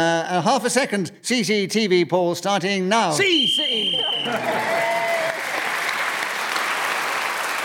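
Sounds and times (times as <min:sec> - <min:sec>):
speech: 0:00.0 - 0:05.0
referee's whistle ending a speaking round in a panel game: 0:03.2 - 0:04.4
crowd's loud steady applause: 0:03.8 - 0:07.6.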